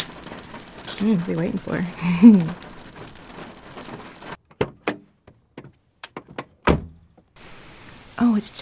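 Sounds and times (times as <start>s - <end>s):
steady rain falling on a small field: 0.0s - 4.4s, 7.3s - 8.6s
speech: 1.0s - 2.7s, 8.4s - 8.6s.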